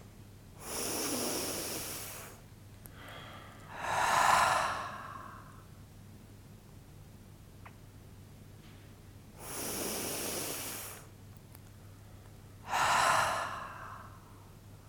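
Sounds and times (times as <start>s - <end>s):
slow deep breathing in a guided breathing exercise: 0.6s - 5.7s, 9.4s - 11.1s, 12.0s - 14.6s.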